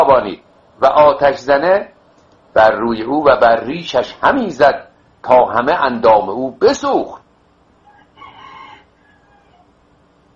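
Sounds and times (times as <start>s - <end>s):
speech: 0.0s - 2.0s, 2.6s - 7.2s
rooster crowing: 7.8s - 9.8s.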